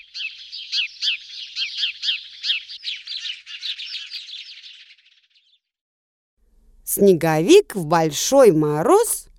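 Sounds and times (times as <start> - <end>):
sparrows chirping: 0.0 - 5.7
speech: 6.9 - 9.3.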